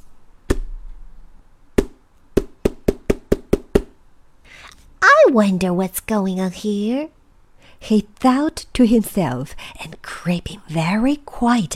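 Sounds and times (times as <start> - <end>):
hammer strikes, sharp and ringing slightly: 1.8 - 4.0
speech: 5.3 - 7.2, 7.8 - 11.7.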